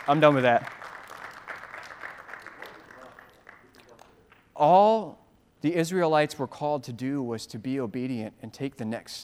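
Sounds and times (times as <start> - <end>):
speech: 0.0 - 0.8, 4.6 - 9.2
room full of people applauding: 0.0 - 4.4.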